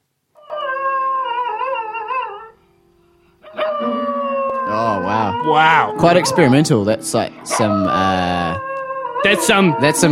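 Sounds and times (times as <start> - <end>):
dog howling a tuneful note: 0.4 - 2.6, 3.4 - 6.8, 7.4 - 10.1
sustained piano tones and chords: 3.4 - 10.1
speech: 5.5 - 8.6, 9.2 - 10.1.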